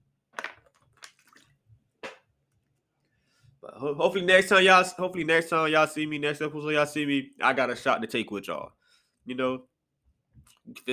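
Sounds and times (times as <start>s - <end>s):
person drinking water: 0.9s - 1.6s
speech: 3.8s - 9.7s, 10.6s - 10.9s.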